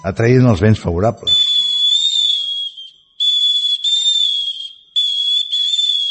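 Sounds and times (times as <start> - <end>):
speech: 0.0 - 1.5
small Mallorcan clay whistle xiulell blown in shrill blasts: 1.3 - 6.0.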